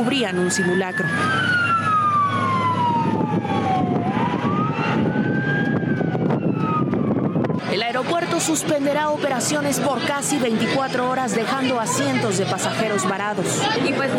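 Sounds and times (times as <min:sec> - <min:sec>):
speech: 0:00.0 - 0:02.4, 0:07.8 - 0:14.1
wailing fire truck sirens: 0:00.0 - 0:09.8
dense rumble of engines and street traffic: 0:00.0 - 0:14.1.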